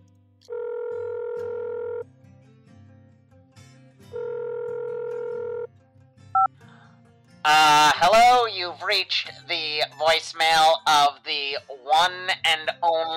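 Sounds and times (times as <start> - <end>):
speech: 0.4 - 0.7, 7.4 - 13.1
phone ringback tone: 0.5 - 2.0, 4.1 - 5.7.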